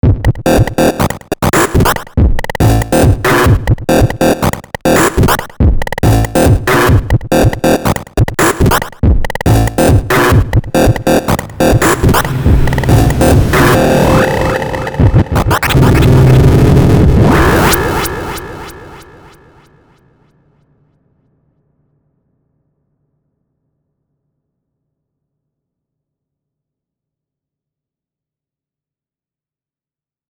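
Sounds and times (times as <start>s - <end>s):
glitch beat: 0.0s - 19.5s.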